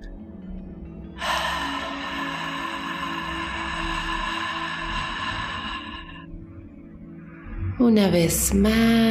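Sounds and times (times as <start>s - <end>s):
soft low musical backdrop: 0.0s - 9.1s
deep breath exhaled slowly through the mouth during a calming meditation: 1.2s - 6.5s
speech: 7.8s - 9.1s.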